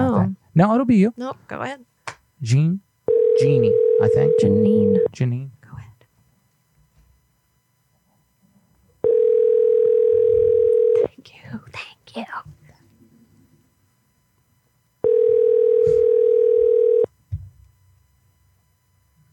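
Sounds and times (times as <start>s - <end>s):
speech: 0.6s - 5.6s, 11.5s - 12.6s
outgoing telephone call ringing unanswered: 3.1s - 5.1s, 9.0s - 11.1s, 15.0s - 17.1s.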